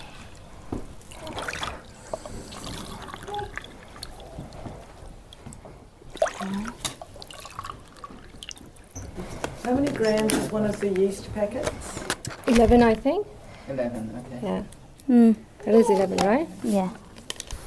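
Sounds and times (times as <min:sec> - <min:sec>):
faint noise: 0:00.0 - 0:17.6
water dripping into a mixing bowl: 0:00.3 - 0:11.0
water pouring and splashing into a mixing bowl: 0:01.0 - 0:05.4, 0:06.0 - 0:09.0
speech: 0:09.7 - 0:17.0.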